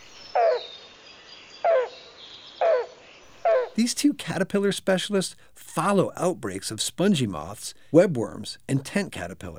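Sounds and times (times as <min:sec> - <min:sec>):
yellow-billed cuckoo giving hollow throaty calls: 0:00.0 - 0:00.8, 0:02.6 - 0:03.9
quiet hiss: 0:00.0 - 0:09.5
speech: 0:03.8 - 0:09.5.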